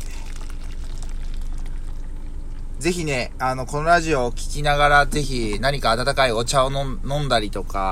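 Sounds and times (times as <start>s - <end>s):
coffee pouring into a cup: 0.0s - 3.4s
speech: 2.8s - 7.9s.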